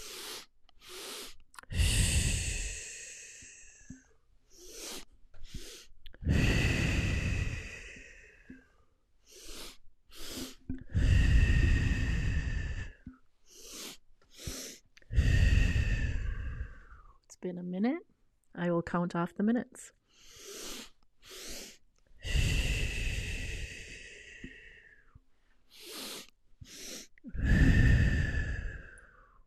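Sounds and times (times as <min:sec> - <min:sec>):
slow deep breathing during a breathing exercise: 0:00.0 - 0:17.2, 0:20.0 - 0:29.4
speech: 0:18.8 - 0:20.0.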